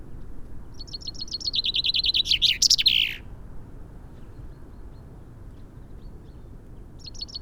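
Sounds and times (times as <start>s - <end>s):
Fringilla coelebs common chaffinch song: 0.8s - 3.3s, 7.0s - 7.3s.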